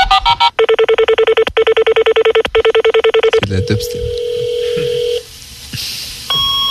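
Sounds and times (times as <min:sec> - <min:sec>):
fax modem telephone-line tones dialing and handshaking: 0:00.0 - 0:05.2.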